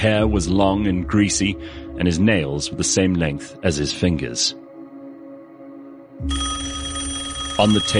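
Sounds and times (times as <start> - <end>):
speech: 0.0 - 4.6, 6.2 - 6.5, 7.6 - 7.9
telephone bell ringing: 6.2 - 7.9.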